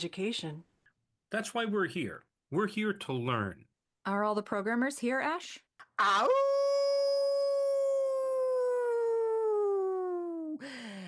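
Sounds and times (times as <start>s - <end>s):
speech: 0.0s - 0.7s, 1.3s - 6.6s
human voice imitating a coyote howl: 6.0s - 10.6s.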